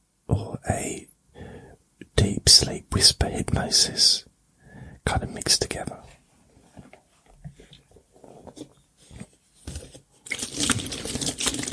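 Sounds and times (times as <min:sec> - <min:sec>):
speech: 0:00.6 - 0:01.1, 0:02.4 - 0:04.3, 0:05.0 - 0:06.1
bottle of water being handled: 0:06.6 - 0:11.7
water sloshing inside a bottle: 0:10.2 - 0:11.7.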